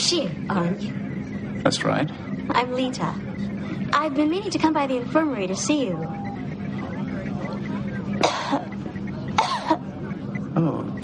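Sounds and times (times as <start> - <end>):
steady low hum: 0.0 - 11.0
speech: 0.1 - 6.2, 8.3 - 8.7, 10.6 - 11.0
short harsh coughs: 8.2 - 8.7, 9.4 - 9.8.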